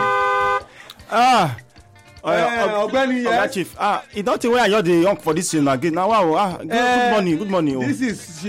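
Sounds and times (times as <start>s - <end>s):
car horn honking at the gate of a house: 0.0s - 0.8s
speech: 1.1s - 1.6s, 2.2s - 8.4s.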